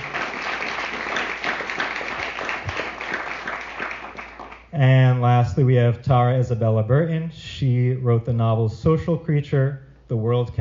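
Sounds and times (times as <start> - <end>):
audience applause: 0.0 - 4.6
speech: 4.8 - 10.5.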